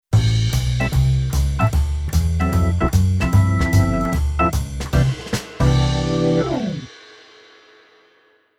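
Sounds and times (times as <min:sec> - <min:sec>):
jazz keyboard organ playing: 0:00.6 - 0:06.9.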